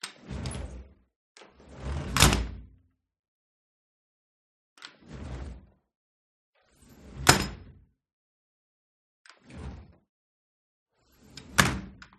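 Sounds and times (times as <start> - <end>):
metal sliding door opening and closing hard in a living room: 0.0 - 2.7, 4.8 - 5.8, 6.7 - 7.8, 9.4 - 10.0, 11.1 - 12.0.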